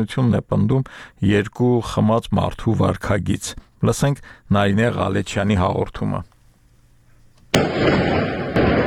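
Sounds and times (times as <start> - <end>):
speech: 0.0 - 6.3, 7.6 - 8.1
gunshots fired near the president's residence in Artsakh: 7.5 - 8.8.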